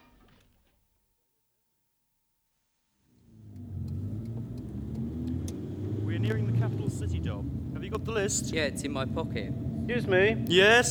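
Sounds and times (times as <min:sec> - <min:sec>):
car engine revving while driving: 0:03.2 - 0:10.8
speech: 0:06.3 - 0:10.8.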